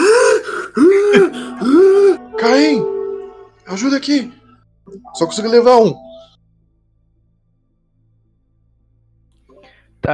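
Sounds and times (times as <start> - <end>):
voice imitating wheezy breathing through an inhaler: 0.0 - 2.2
speech: 0.8 - 1.3, 3.8 - 6.0.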